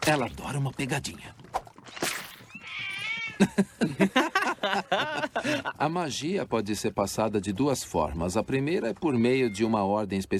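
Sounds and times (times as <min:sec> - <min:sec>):
speech: 0:00.0 - 0:01.6, 0:03.4 - 0:10.3
mother cat meowing: 0:02.3 - 0:03.5
laughter: 0:03.4 - 0:06.0.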